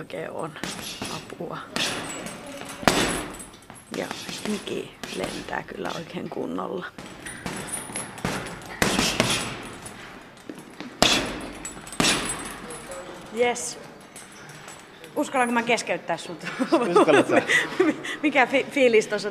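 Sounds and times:
speech: 0.0s - 3.2s, 3.9s - 7.2s, 13.4s - 13.9s, 15.2s - 19.2s
boxer's punches hitting a heavy boxing bag: 0.5s - 6.1s, 7.0s - 10.0s, 11.0s - 12.8s
laughter: 16.4s - 18.1s.

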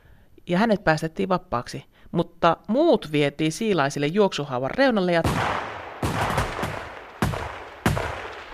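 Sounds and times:
speech: 0.5s - 5.7s
dense background of gunshots: 5.2s - 8.5s
firing squad rifle volleys: 5.3s - 8.5s.

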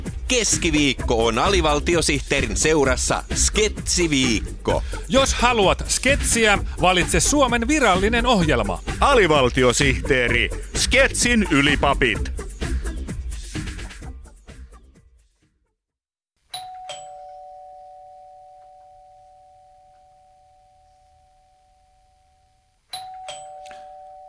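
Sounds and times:
speech: 0.3s - 12.4s
two-tone doorbell chime: 16.5s - 24.2s.

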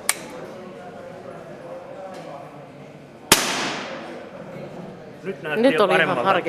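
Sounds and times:
murmuring background: 0.0s - 6.4s
single sharp gunshot: 3.3s - 4.1s
speech: 5.2s - 6.4s.

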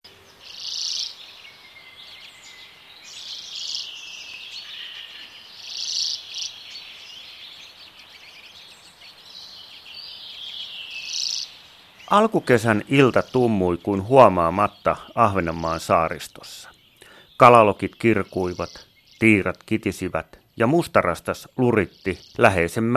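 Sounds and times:
quiet background hiss: 0.1s - 22.9s
speech: 12.1s - 16.7s, 17.4s - 22.9s
common redpoll buzzy rattling trills: 12.1s - 22.9s.

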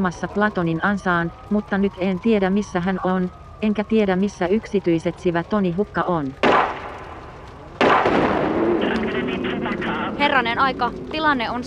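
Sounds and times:
speech: 0.0s - 6.6s, 10.3s - 11.6s
rumbling crackling noise outdoors: 0.0s - 11.6s
gunshot: 6.4s - 7.1s, 7.8s - 10.0s.

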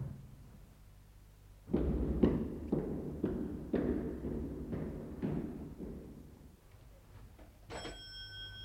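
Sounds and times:
firm knocking on a door: 1.7s - 6.4s
high ringing tone: 7.7s - 8.6s.

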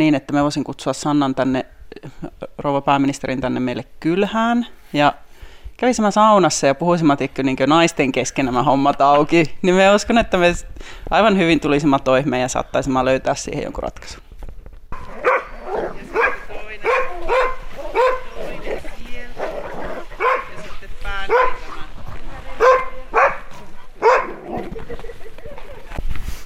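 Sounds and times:
speech: 0.0s - 5.2s, 5.8s - 14.2s
sled dogs barking at a kennel: 14.9s - 24.9s
sled dogs howling and yelping: 15.0s - 20.6s, 22.6s - 24.8s
laughter: 24.4s - 26.0s.

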